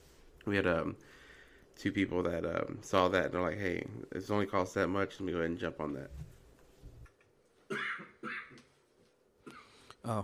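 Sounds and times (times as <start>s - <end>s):
speech: 0.4s - 1.2s, 1.8s - 6.3s, 10.0s - 10.2s
sharp coughs to clear the throat: 7.7s - 8.7s.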